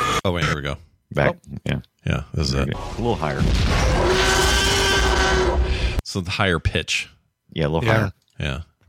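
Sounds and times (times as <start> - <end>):
speech: 0.2 - 4.5, 6.1 - 8.8
dinosaur roar sound effect: 2.8 - 6.0.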